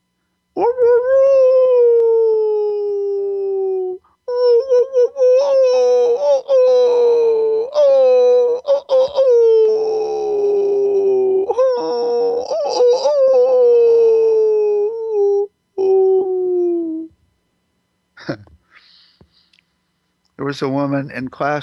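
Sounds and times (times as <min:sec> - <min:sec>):
person's voice imitating a wolf's wailing howl: 0:00.6 - 0:17.2
speech: 0:20.5 - 0:21.6.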